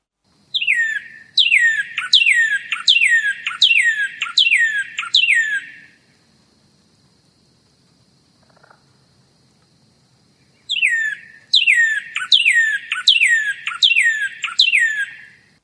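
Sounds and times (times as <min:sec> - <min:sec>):
northern cardinal from Mexico and Central America calling: 0:00.5 - 0:06.0, 0:10.7 - 0:15.4.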